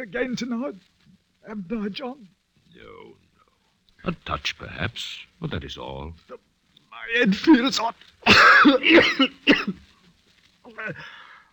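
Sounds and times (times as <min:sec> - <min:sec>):
speech: 0:00.0 - 0:03.3, 0:04.0 - 0:09.8, 0:10.7 - 0:11.2
short strained vocal sound: 0:02.7 - 0:04.8
person coughing in a rough harsh fit: 0:08.2 - 0:09.8.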